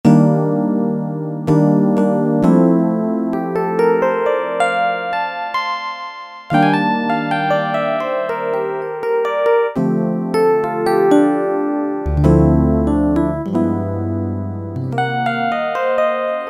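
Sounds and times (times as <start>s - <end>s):
Kawai K1m synthesizer: 0.0s - 16.4s
Rhodes electric piano: 0.0s - 16.4s.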